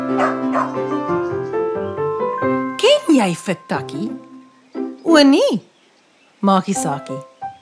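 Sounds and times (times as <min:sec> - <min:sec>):
speech: 0:00.1 - 0:02.0, 0:03.2 - 0:04.3, 0:05.0 - 0:05.7, 0:06.4 - 0:07.3
small black mongrel dog barking: 0:00.2 - 0:00.8.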